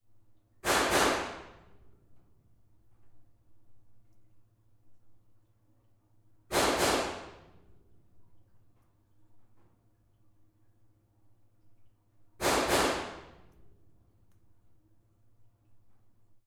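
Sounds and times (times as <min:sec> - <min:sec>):
suppressed pistol double shots with blanks in a small stone room: 0:00.6 - 0:01.5, 0:06.5 - 0:07.5, 0:12.4 - 0:13.4.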